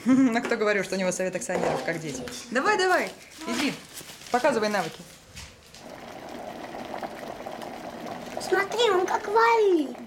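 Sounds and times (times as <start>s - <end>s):
speech: 0.0s - 5.2s, 8.5s - 10.0s
kettle boiling water: 5.8s - 10.0s.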